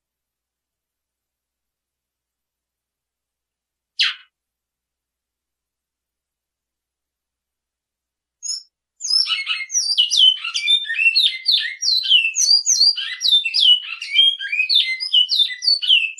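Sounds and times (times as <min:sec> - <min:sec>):
great-billed seed finch song: 0:08.4 - 0:16.1.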